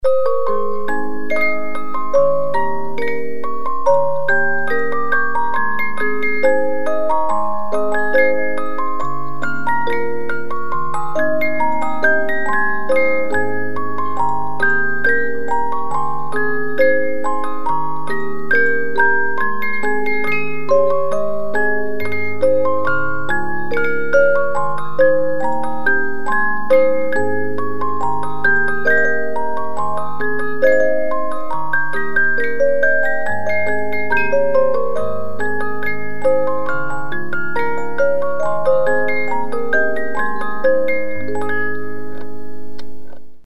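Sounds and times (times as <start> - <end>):
glockenspiel: 0.0 - 43.2
music box with 50-note movement: 0.0 - 43.4.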